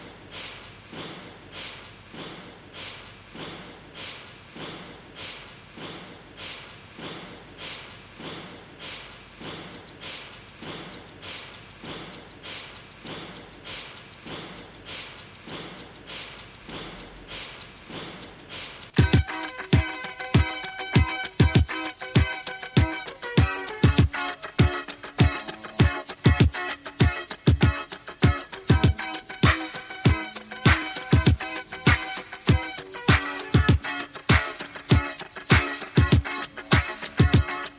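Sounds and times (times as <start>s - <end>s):
1982 pop song playing: 19.0s - 37.7s.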